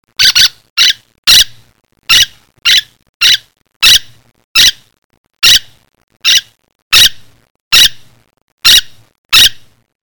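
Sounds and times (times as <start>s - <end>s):
bird giving sharp squeaky high calls: 0.2s - 1.5s, 2.1s - 4.8s, 5.4s - 7.2s.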